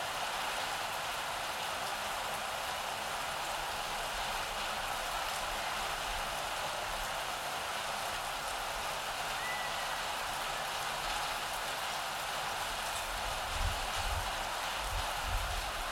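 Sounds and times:
steady heavy summer rain: 0.0s - 15.9s.

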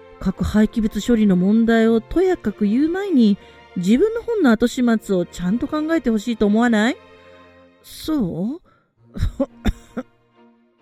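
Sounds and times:
speech: 0.2s - 7.1s, 7.8s - 9.6s
person coughing rough throaty coughs while handing back a book: 9.2s - 10.1s.

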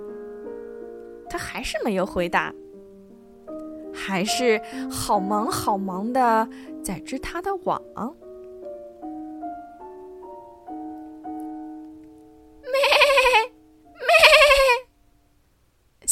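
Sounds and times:
soft steady melodic tone: 0.0s - 12.6s
speech: 1.3s - 2.6s, 4.0s - 8.2s
goat bleating: 12.7s - 14.8s.

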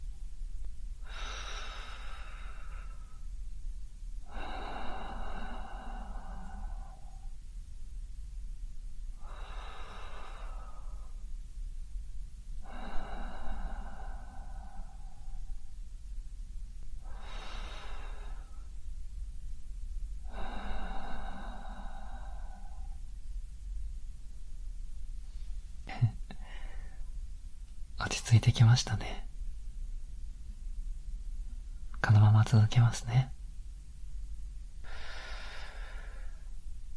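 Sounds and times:
low steady hum: 0.0s - 36.9s
slow breathing in and out during a guided calming exercise: 1.0s - 3.6s, 4.2s - 7.5s, 9.1s - 11.4s, 12.6s - 15.9s, 17.0s - 18.9s, 20.1s - 23.2s, 25.2s - 27.2s, 34.8s - 36.7s
speech: 28.3s - 29.3s, 32.0s - 33.4s.

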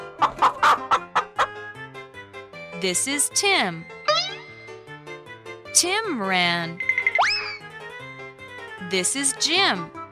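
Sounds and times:
hen clucking: 0.2s - 1.6s
speech: 2.8s - 4.0s, 5.8s - 7.3s, 8.9s - 10.0s.

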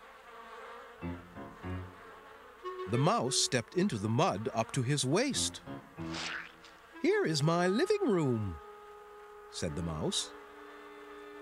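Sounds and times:
bees buzzing: 0.0s - 11.3s
speech: 2.9s - 6.4s, 7.0s - 8.6s, 9.5s - 10.4s.

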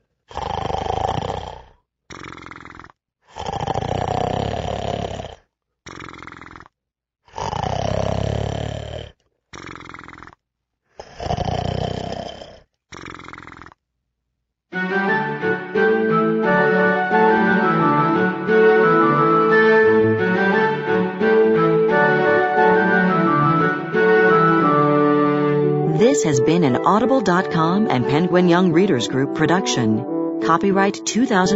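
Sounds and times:
loud growling monster snores: 0.3s - 10.4s, 11.0s - 13.8s
music: 14.8s - 31.5s
speech: 26.6s - 31.5s.

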